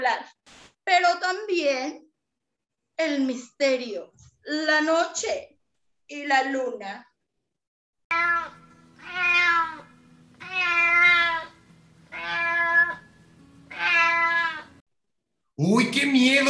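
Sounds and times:
speech: 0:00.1 - 0:02.1, 0:03.0 - 0:05.5, 0:06.1 - 0:07.1, 0:15.6 - 0:16.4
black female cat meowing wildly: 0:08.1 - 0:13.1, 0:13.7 - 0:14.8.

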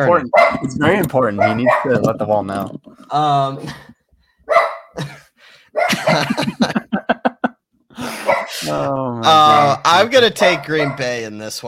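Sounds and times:
speech: 0:00.0 - 0:03.9, 0:06.1 - 0:06.8, 0:08.6 - 0:11.6
dog barking: 0:00.3 - 0:00.7, 0:01.3 - 0:02.0, 0:04.5 - 0:05.0, 0:05.7 - 0:06.3, 0:08.2 - 0:08.6, 0:10.5 - 0:11.2
laughter: 0:05.0 - 0:08.6.

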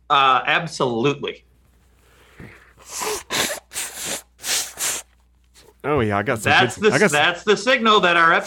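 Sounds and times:
speech: 0:00.1 - 0:01.5, 0:02.8 - 0:03.2, 0:05.8 - 0:08.4
person blowing nose: 0:02.3 - 0:05.8.

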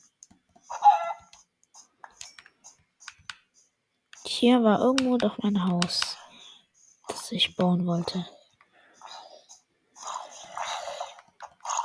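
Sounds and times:
hen clucking: 0:00.7 - 0:01.3
speech: 0:04.4 - 0:06.2, 0:07.3 - 0:08.4.

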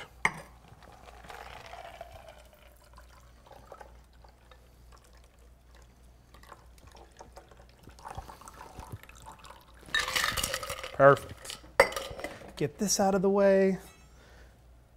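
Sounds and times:
cocktail poured into a coupe glass: 0:00.8 - 0:11.2
speech: 0:11.0 - 0:11.3, 0:12.6 - 0:13.9.

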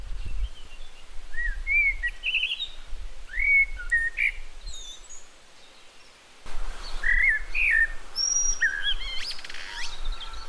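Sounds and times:
bird singing a varied song of high whistled phrases: 0:00.0 - 0:06.2, 0:06.8 - 0:10.4.

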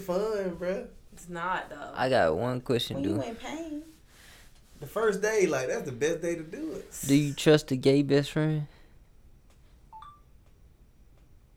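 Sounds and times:
speech: 0:00.0 - 0:04.0, 0:04.8 - 0:08.8
quiet hiss: 0:00.0 - 0:11.5
short electronic phone beep: 0:09.9 - 0:10.3.

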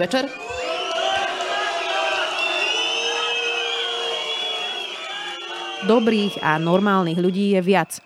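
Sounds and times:
speech: 0:00.0 - 0:00.6, 0:05.8 - 0:08.0
crowd shouting and heckling at debate: 0:00.0 - 0:08.0.

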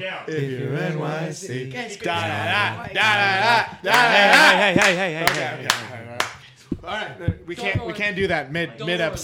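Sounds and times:
speech: 0:00.3 - 0:05.9, 0:06.9 - 0:09.2
small group of voices cheering in unison: 0:03.1 - 0:05.9
sparse soft golf clapping: 0:03.9 - 0:06.5.

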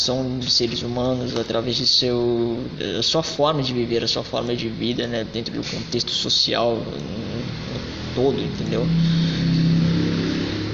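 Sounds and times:
speech: 0:00.0 - 0:09.7
road traffic engine rumble: 0:05.3 - 0:10.7
low droning hum: 0:06.8 - 0:10.7
vehicle revving past: 0:07.1 - 0:10.7.

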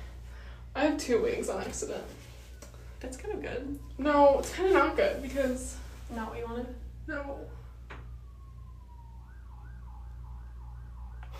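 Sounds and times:
emergency vehicle siren passing: 0:00.0 - 0:11.3
speech: 0:00.9 - 0:02.2, 0:03.0 - 0:07.6.

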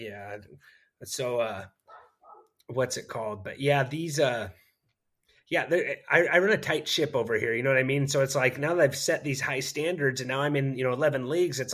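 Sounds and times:
speech: 0:00.0 - 0:01.8, 0:02.7 - 0:04.6, 0:05.5 - 0:11.7
dog barking: 0:01.9 - 0:02.6.

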